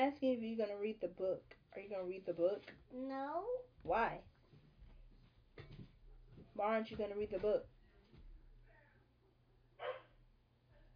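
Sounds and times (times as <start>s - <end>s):
speech: 0.0s - 4.3s, 6.6s - 7.7s
quiet room hum: 0.0s - 10.9s
dog barking: 9.8s - 10.2s.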